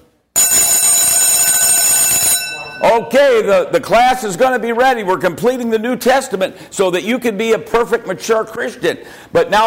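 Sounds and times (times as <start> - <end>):
bright metallic bell ringing: 0.4 - 3.5
speech: 2.8 - 9.6.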